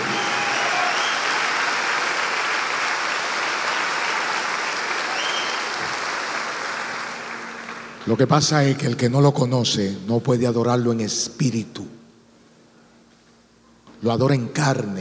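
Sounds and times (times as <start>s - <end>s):
audience applauding: 0.0s - 8.0s
speech: 8.1s - 12.0s, 14.0s - 14.9s.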